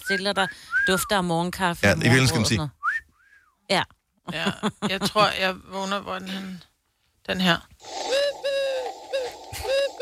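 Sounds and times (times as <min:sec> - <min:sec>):
speech: 0:00.1 - 0:02.8, 0:03.7 - 0:08.6
blackbird calling outside a window: 0:07.8 - 0:10.0.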